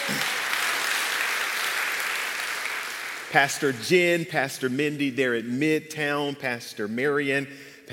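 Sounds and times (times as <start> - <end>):
audience applauding: 0.0 - 4.2
speech: 3.3 - 7.9.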